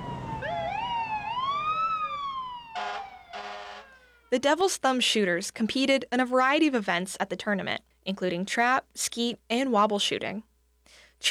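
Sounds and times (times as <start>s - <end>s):
fire truck siren wailing in a welcome-home parade: 0.0s - 4.4s
fire truck horn blasts: 2.4s - 4.2s
speech: 4.3s - 10.5s.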